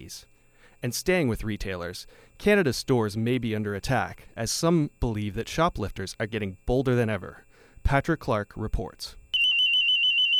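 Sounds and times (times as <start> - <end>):
speech: 0.1 - 9.2
store anti-theft alarm in a clothing store: 9.4 - 10.3.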